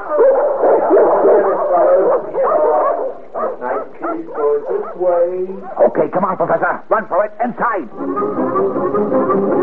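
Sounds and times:
several dogs barking and yipping: 0:00.0 - 0:05.9
speech: 0:05.3 - 0:09.5.

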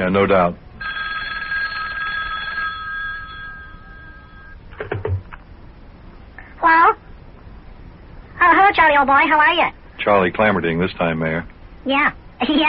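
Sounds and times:
speech: 0:00.0 - 0:00.6, 0:08.9 - 0:12.6
telephone bell ringing: 0:00.8 - 0:04.6.

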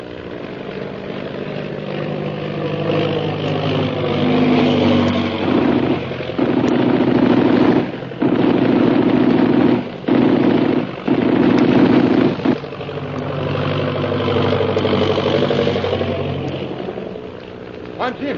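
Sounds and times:
propeller engine drone: 0:00.0 - 0:18.3
rapid machine-gun fire aimed at an airplane: 0:03.9 - 0:12.7.

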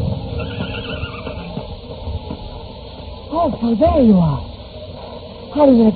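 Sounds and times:
dense rumbling as a storm approaches: 0:00.0 - 0:05.6
horse neighing on rocky ground as a storm approaches: 0:00.2 - 0:01.7
speech: 0:03.4 - 0:04.5, 0:05.6 - 0:05.9.

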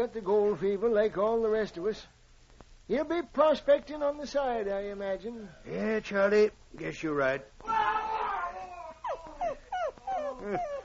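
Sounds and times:
speech: 0:00.0 - 0:02.2, 0:02.9 - 0:07.9, 0:10.4 - 0:10.7
man howling in pain during tooth extraction: 0:07.6 - 0:10.8
short high falling whimpers and yelps: 0:07.8 - 0:10.8.

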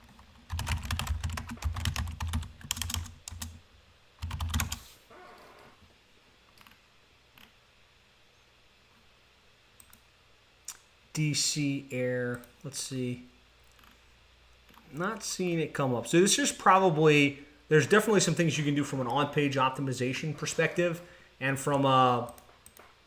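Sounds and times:
typing a search entry on a computer keyboard: 0:00.0 - 0:03.6, 0:04.2 - 0:04.8
speech: 0:11.2 - 0:13.3, 0:14.9 - 0:22.4.

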